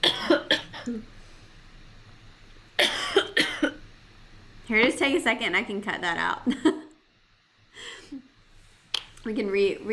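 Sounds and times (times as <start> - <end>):
harsh coughing from a person with a scratchy throat during an interview: 0.0 - 0.9, 2.8 - 3.8
speech: 0.9 - 1.2, 4.7 - 6.8, 9.2 - 9.9.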